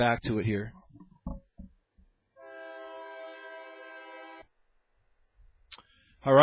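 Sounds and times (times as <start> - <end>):
speech: 0.0 - 0.8, 6.2 - 6.4
passing train horn blast: 2.4 - 4.5.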